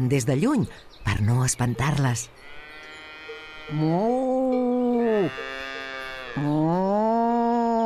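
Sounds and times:
speech: 0:00.0 - 0:02.6, 0:03.7 - 0:05.6, 0:06.4 - 0:07.2
person imitating a cow mooing: 0:03.6 - 0:07.8.

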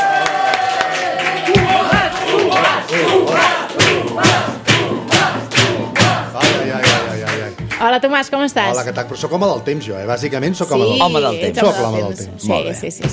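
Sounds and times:
studio audience cheers and whoops: 0:00.0 - 0:02.0
studio audience applauding: 0:00.0 - 0:07.9
speech: 0:07.8 - 0:13.1.

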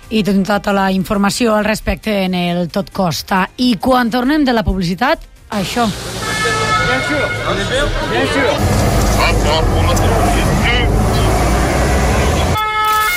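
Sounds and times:
speech: 0:00.1 - 0:10.5
heavy bus engines rumbling: 0:05.5 - 0:12.6
sustained horn tones: 0:05.9 - 0:13.1
expectant crowd murmuring at arrivals: 0:06.4 - 0:12.6.

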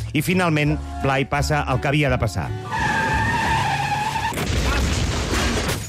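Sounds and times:
speech: 0:00.1 - 0:02.8
car tire squealing: 0:02.3 - 0:05.8
car crashing into another car: 0:02.8 - 0:05.8.

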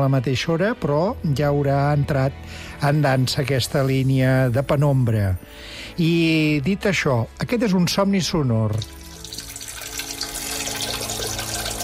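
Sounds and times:
speech: 0:00.0 - 0:09.0
water running in a steady stream, splashing and gurgling: 0:08.7 - 0:11.8.

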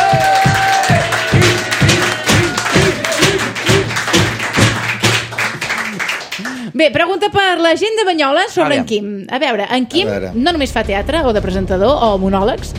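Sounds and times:
crowd noise: 0:00.0 - 0:05.0
audience clapping loudly in a rhythmic beat: 0:00.0 - 0:07.6
speech: 0:00.1 - 0:00.3, 0:06.8 - 0:12.7.

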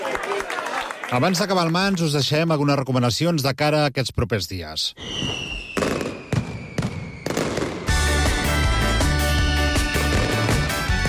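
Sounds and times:
speech: 0:01.1 - 0:05.3
mascletà firecracker barrage at the Valencia Fallas in the town hall square: 0:05.0 - 0:11.0.

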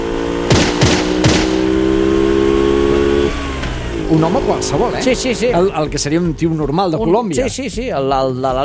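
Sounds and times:
motorcycle engine droning: 0:00.0 - 0:05.9
pistol gunshots: 0:00.5 - 0:02.0
speech: 0:04.1 - 0:08.6.

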